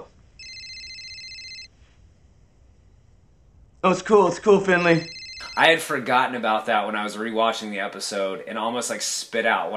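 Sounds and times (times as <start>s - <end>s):
phone ringing with an electronic trill: 0.4s - 1.7s, 4.8s - 6.3s
speech: 3.9s - 9.7s.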